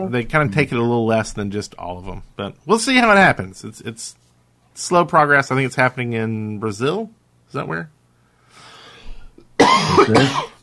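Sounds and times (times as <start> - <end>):
speech: 0.0 - 4.2, 4.8 - 8.0, 9.8 - 10.5
person coughing: 9.6 - 10.6.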